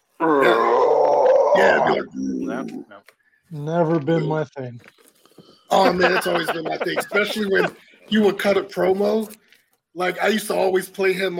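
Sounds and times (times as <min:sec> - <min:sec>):
voice imitating a death metal growl: 0:00.2 - 0:02.8
speech: 0:01.6 - 0:05.1, 0:05.7 - 0:09.4, 0:10.0 - 0:11.3
laughter: 0:05.7 - 0:08.6.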